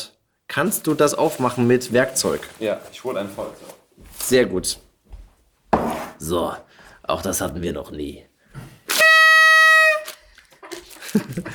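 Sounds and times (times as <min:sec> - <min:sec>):
speech: 0:00.6 - 0:04.9, 0:06.2 - 0:08.7, 0:11.1 - 0:11.5
faint rustling: 0:00.7 - 0:05.5
party horn blown: 0:08.9 - 0:10.3
laughter: 0:10.6 - 0:11.5.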